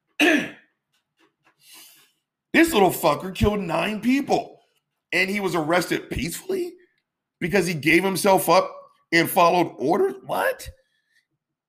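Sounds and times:
loud throaty cough: 0.2s - 0.7s
speech: 2.5s - 4.5s, 5.1s - 6.8s, 7.4s - 10.8s.

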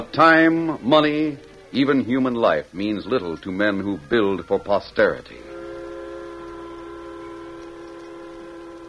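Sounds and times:
speech: 0.0s - 5.5s
low train rumbling: 0.0s - 8.8s
steam train whistle blast: 4.4s - 8.8s.

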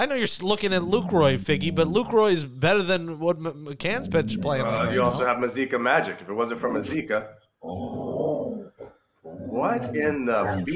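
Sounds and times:
speech: 0.0s - 8.1s, 9.6s - 10.7s
dog growling: 0.8s - 2.2s, 3.9s - 5.4s, 7.6s - 10.7s.

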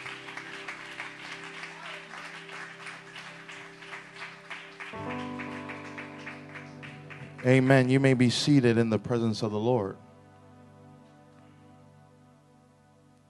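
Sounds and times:
congregation applauding: 0.0s - 8.1s
organ or keyboard chords: 0.0s - 13.2s
speech: 7.4s - 10.1s.

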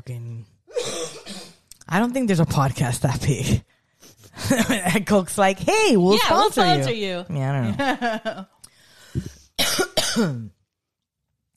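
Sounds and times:
speech: 0.0s - 1.3s, 1.9s - 3.7s, 4.5s - 8.6s, 10.2s - 10.6s
person coughing while drinking coffee: 0.7s - 1.6s, 9.6s - 10.5s
laughter: 4.4s - 5.1s, 7.6s - 8.4s.

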